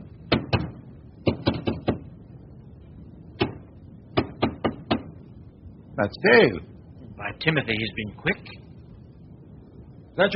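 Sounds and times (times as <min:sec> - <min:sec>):
knocking behind wooden wall paneling between a parlor and a staircase: 0:00.3 - 0:02.0, 0:03.4 - 0:05.2
speech: 0:06.0 - 0:08.6, 0:10.2 - 0:10.3.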